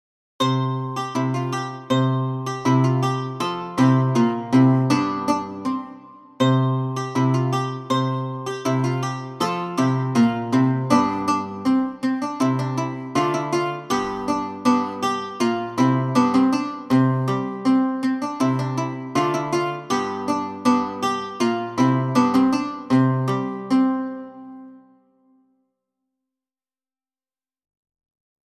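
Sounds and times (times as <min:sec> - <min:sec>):
lute playing in primary school music: 0:00.4 - 0:25.1.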